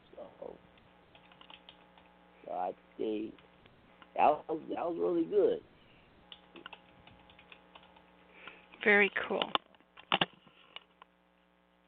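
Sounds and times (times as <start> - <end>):
typing on a computer keyboard: 1.1 - 2.1, 6.3 - 8.1
speech: 2.6 - 3.4, 4.2 - 5.7, 8.8 - 9.6.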